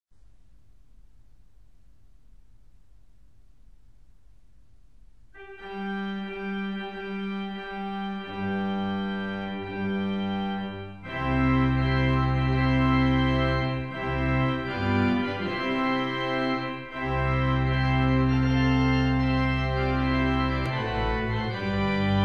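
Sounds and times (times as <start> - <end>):
wedding march on the pipe organ: 5.4 - 22.2.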